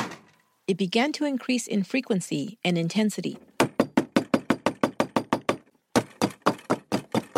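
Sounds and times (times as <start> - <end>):
speech: 0.7 - 3.5
loud knocking on the front door of a house at a farm: 3.6 - 7.3.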